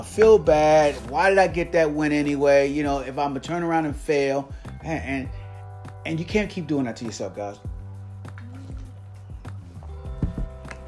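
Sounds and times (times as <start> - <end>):
speech: 0.0 - 5.4, 6.0 - 7.7
person sipping and gulping water: 8.3 - 9.9.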